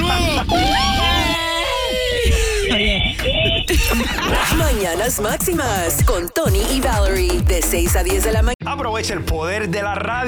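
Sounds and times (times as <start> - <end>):
laughter: 0.2 - 5.3
loud high-pitched human scream: 0.3 - 2.7
speech: 3.9 - 10.2.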